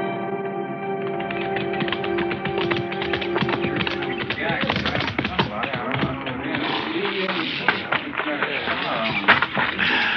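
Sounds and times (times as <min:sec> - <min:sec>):
horse hooves clip-clopping: 0:01.1 - 0:10.1.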